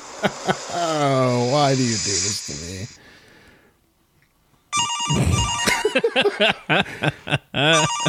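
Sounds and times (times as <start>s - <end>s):
speech: 0.2s - 3.2s, 6.0s - 8.0s
car phone electronic ringtone: 4.7s - 6.0s, 7.7s - 8.0s
laughter: 5.1s - 8.0s.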